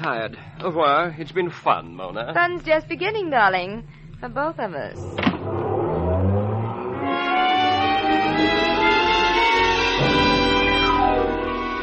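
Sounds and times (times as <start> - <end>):
speech: 0.0 - 5.6
car engine revving as it accelerates: 5.0 - 11.7.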